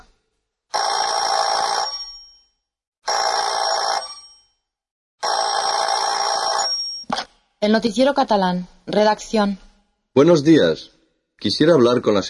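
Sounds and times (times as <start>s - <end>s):
telephone ringing during outgoing call: 0.7s - 2.2s, 3.1s - 4.5s, 5.2s - 7.2s
speech: 7.6s - 9.6s, 10.2s - 12.2s.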